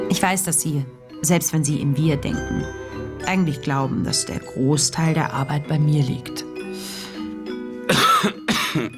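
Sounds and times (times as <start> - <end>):
speech: 0.1 - 6.9, 7.9 - 8.9
person coughing: 7.9 - 8.9.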